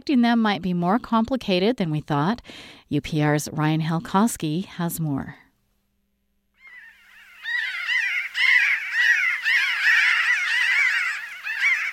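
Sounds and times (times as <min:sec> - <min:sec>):
speech: 0:00.0 - 0:05.4
flock of Pinyon jays calling: 0:06.6 - 0:11.9.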